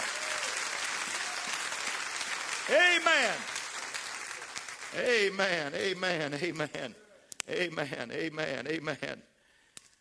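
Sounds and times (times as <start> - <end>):
congregation clapping hands: 0.0 - 6.4
speech: 2.7 - 3.6, 4.9 - 9.3.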